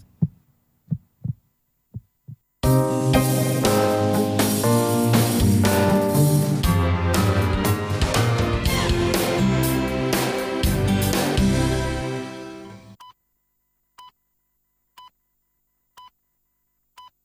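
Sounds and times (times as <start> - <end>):
deep heartbeat thumps: 0.0 - 2.5
loud full music: 2.6 - 13.0.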